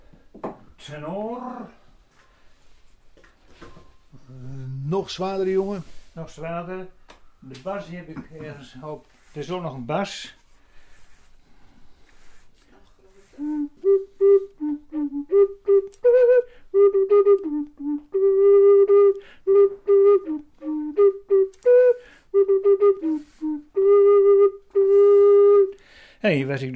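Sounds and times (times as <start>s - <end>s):
speech: 0.4s - 1.8s, 4.3s - 10.4s, 26.3s - 26.7s
homemade flute playing a simple melody: 13.1s - 25.8s.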